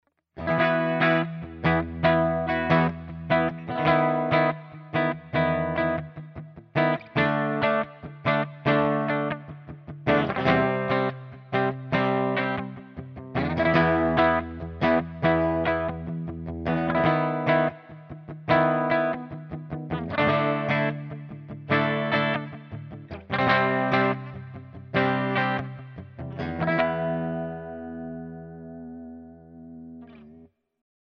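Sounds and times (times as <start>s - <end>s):
electric guitar on bridge pickup with clean tone: 0.1s - 30.5s.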